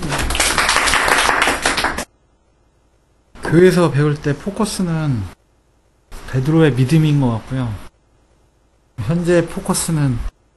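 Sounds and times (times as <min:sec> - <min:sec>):
audience applause: 0:00.0 - 0:02.1
speech: 0:03.5 - 0:05.4, 0:06.3 - 0:07.8, 0:09.0 - 0:10.3.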